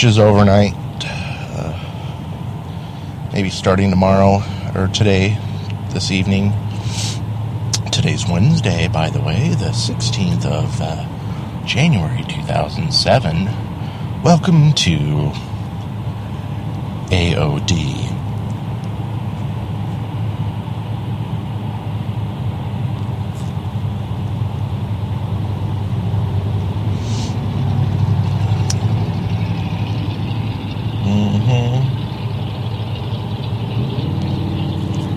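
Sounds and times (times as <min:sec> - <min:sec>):
speech: 0:00.0 - 0:00.8, 0:03.4 - 0:07.1, 0:08.0 - 0:15.5, 0:17.1 - 0:18.2
car engine idling: 0:00.0 - 0:35.1
faint higher-pitched mechanical whines: 0:00.0 - 0:35.1.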